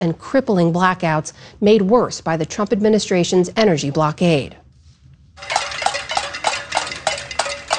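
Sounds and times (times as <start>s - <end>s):
speech: 0.0s - 4.6s, 5.4s - 5.6s
protesters banging metal pots in the streets of Havana Cuba: 5.4s - 7.7s.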